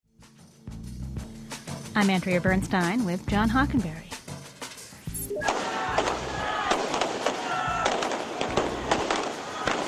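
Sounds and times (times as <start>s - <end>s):
speech: 2.0s - 4.1s
firecrackers bursting outdoors in a street celebration: 5.4s - 9.8s.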